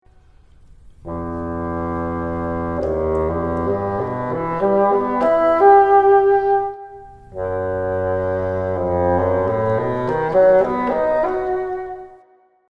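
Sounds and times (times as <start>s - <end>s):
bassoon: 0.1s - 12.3s.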